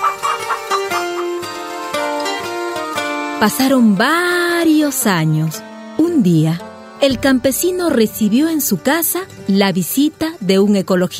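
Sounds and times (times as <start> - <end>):
hens clucking in a henhouse: 0.0 - 1.8
tonal music: 0.1 - 10.4
speech: 3.4 - 11.1.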